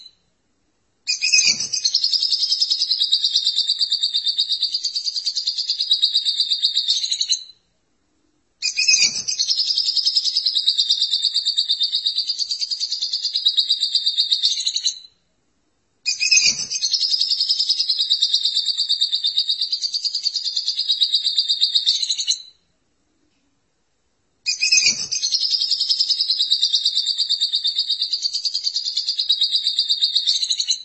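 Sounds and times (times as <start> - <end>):
lovebird chattering song: 1.1 - 7.4, 8.6 - 15.0, 16.1 - 22.4, 24.5 - 30.8.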